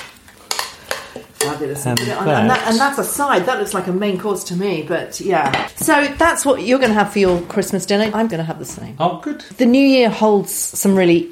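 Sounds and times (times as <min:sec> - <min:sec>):
utensil stirring baby spinach through a dish: 0:00.0 - 0:04.5
speech: 0:01.4 - 0:11.3.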